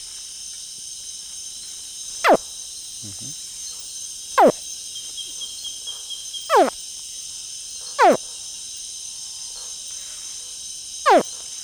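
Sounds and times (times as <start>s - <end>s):
continuous insect drone on an Amazon riverbank at night: 0.0s - 11.6s
baby crocodile chirping calls on an Amazon riverbank at night: 2.2s - 2.4s, 4.4s - 4.6s, 6.5s - 6.8s, 8.0s - 8.2s, 11.1s - 11.3s
speech: 3.0s - 3.5s.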